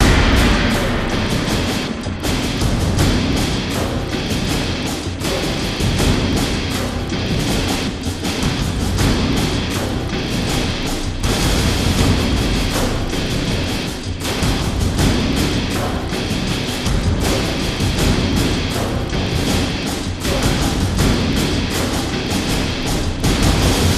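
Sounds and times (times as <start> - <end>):
drum and guitar loop: 0.0 - 23.9.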